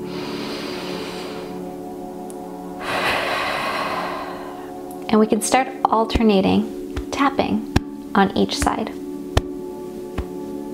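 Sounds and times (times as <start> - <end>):
deep belly breath during a breathing exercise: 0.0 - 1.7, 2.8 - 4.8
speech: 5.1 - 9.0.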